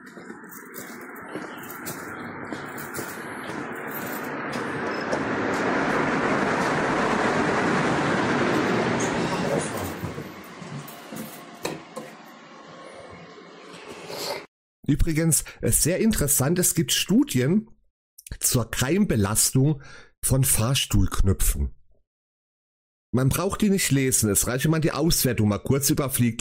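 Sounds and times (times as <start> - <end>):
S-Bahn commuter train rumbling through a station: 0.0 - 14.4
speech: 0.1 - 1.5, 14.9 - 17.7, 18.5 - 21.8, 23.1 - 26.3.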